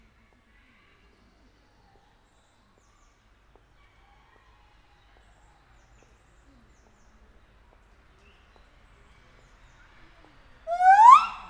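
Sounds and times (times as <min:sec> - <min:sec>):
captive white-handed gibbon whistled call at a zoo in Nyíregyháza: 0:10.7 - 0:11.4.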